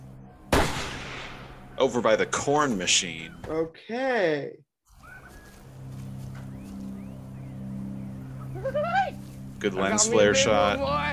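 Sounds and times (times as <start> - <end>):
gunshot: 0.5 - 1.7
speech: 1.8 - 4.7, 8.6 - 11.1.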